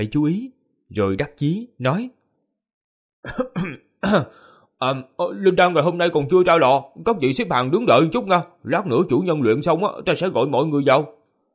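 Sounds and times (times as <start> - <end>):
speech: 0.0 - 2.2, 3.2 - 11.2
young man dry coughing: 3.2 - 4.6.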